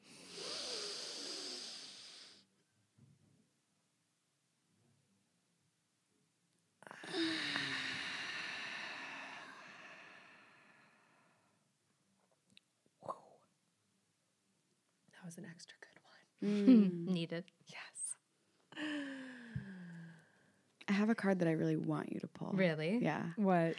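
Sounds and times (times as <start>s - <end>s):
deep breathing exercise exhale: 0.0s - 2.4s, 6.9s - 11.5s
deep breathing exercise inhale: 0.0s - 2.4s, 6.9s - 11.6s, 18.8s - 20.6s
speech: 15.3s - 18.0s, 21.0s - 23.7s.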